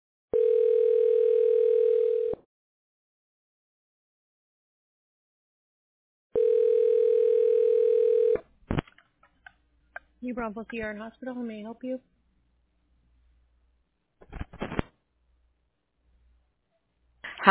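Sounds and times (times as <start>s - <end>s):
telephone dial tone: 0.3s - 2.4s, 6.4s - 8.4s
speech: 10.3s - 12.2s.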